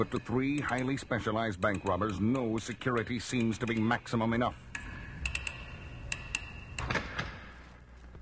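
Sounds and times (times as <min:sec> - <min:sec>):
speech: 0:00.0 - 0:04.8
vault lock clunking open: 0:06.8 - 0:07.6.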